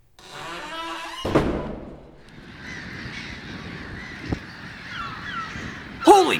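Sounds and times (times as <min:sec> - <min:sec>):
large flock of birds cawing: 0:02.3 - 0:06.3.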